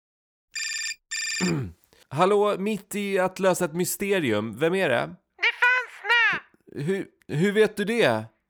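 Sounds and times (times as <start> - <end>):
electronic telephone ringing: 0.6 - 1.5
speech: 1.4 - 5.2, 6.8 - 8.3.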